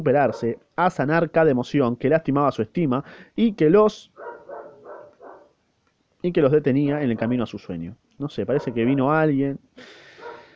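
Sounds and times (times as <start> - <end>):
speech: 0.0 - 4.1, 6.2 - 10.0
dog barking: 0.2 - 0.6, 4.2 - 5.6, 7.0 - 7.5, 8.5 - 9.0, 10.2 - 10.5.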